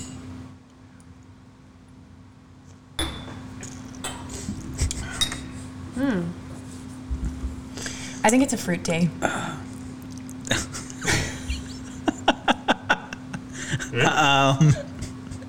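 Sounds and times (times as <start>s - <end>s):
glasses clinking in a toast: 3.0s - 5.7s
low steady hum: 3.0s - 12.1s
speech: 6.0s - 6.4s, 8.2s - 9.5s, 14.0s - 14.8s
laughter: 10.5s - 14.9s.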